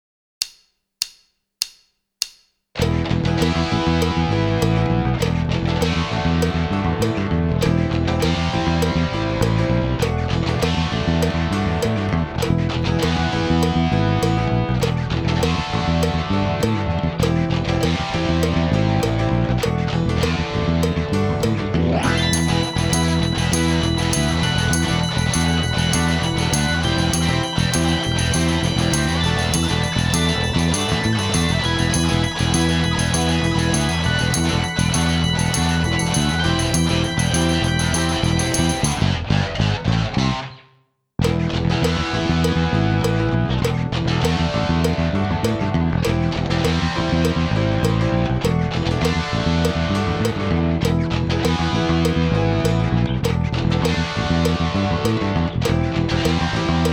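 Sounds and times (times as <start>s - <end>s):
hard rock backing track: 2.8s - 40.5s, 41.2s - 56.9s.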